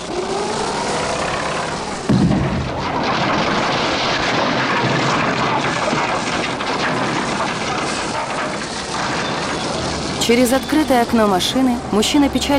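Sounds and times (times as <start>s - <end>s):
cast-iron wrecking ball and excavator bucket demolishing an old building: 0.0s - 12.5s
loud impact thud: 2.1s - 7.7s
speech: 10.3s - 12.5s.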